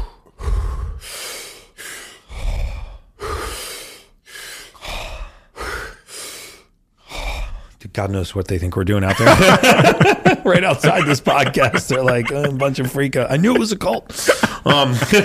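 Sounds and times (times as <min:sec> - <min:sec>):
deep breathing exercise with forceful inhales and exhales: 0:00.0 - 0:07.8, 0:13.5 - 0:15.2
speech: 0:08.0 - 0:15.2
laughter: 0:09.1 - 0:15.2.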